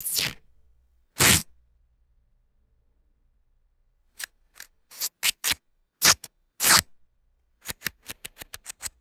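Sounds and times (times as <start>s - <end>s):
short rips of sticky gaffer tape: 0.0s - 0.4s, 1.2s - 1.4s, 4.2s - 6.9s, 7.6s - 8.9s.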